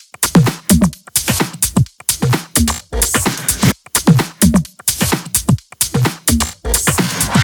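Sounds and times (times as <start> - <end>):
drum kit at 129 BPM: 0.0 - 7.4.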